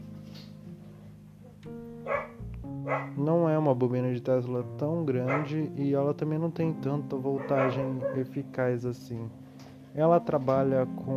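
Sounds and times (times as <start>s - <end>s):
dog barking: 2.0s - 3.2s, 5.2s - 5.6s, 7.4s - 8.2s
speech: 2.1s - 9.4s, 10.0s - 11.1s.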